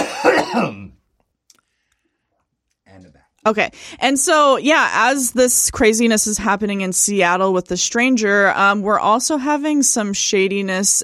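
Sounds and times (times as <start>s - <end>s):
person coughing after inhaling beer: 0.0s - 1.0s
speech: 3.4s - 11.0s.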